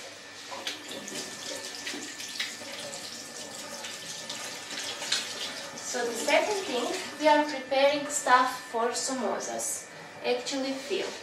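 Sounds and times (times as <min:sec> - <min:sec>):
tap water running steadily into a sink: 0:00.5 - 0:07.0
speech: 0:06.0 - 0:11.2.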